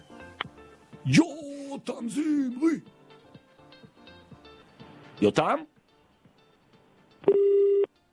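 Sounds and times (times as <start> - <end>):
speech: 1.0 - 3.0, 5.2 - 5.7
telephone ring tone on an outgoing call: 7.3 - 7.9.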